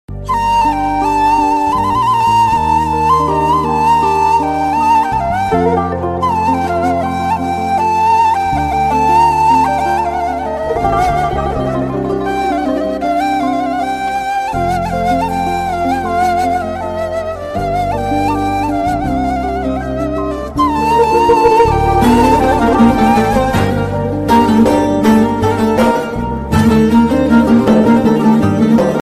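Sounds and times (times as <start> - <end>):
sad Turkish flute melody: 0.1 - 29.0.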